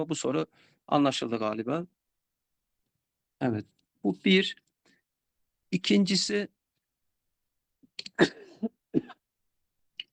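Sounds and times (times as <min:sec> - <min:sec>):
speech: 0:00.0 - 0:02.0, 0:03.4 - 0:04.6, 0:05.7 - 0:06.6, 0:08.0 - 0:09.1
person coughing: 0:08.0 - 0:09.2
throat clearing: 0:08.0 - 0:09.2.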